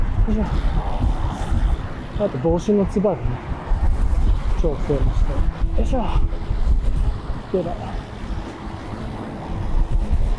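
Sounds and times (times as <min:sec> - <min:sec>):
strong wind buffeting the microphone during a ride by the sea at sunset: 0:00.0 - 0:10.3
speech: 0:00.3 - 0:01.1, 0:02.2 - 0:03.5, 0:04.6 - 0:06.4, 0:07.5 - 0:08.0.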